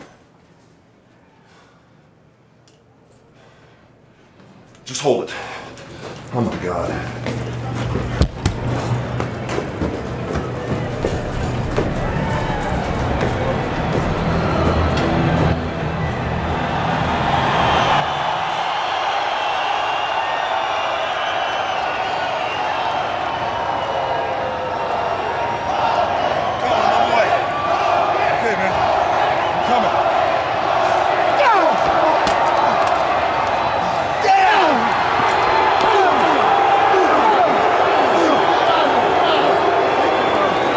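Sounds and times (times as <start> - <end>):
speech: 4.9 - 5.6, 6.3 - 8.2
heavy thuds and slams from the wrestling ring: 8.2 - 8.8
huge arena crowd booing at a wrestling event: 8.2 - 40.7.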